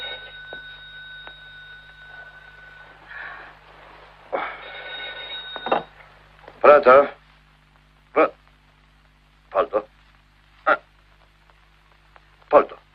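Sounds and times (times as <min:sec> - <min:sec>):
telephone ringing with electronic trill: 0:00.0 - 0:03.1, 0:04.4 - 0:06.1
speech: 0:06.6 - 0:07.2, 0:08.2 - 0:08.4.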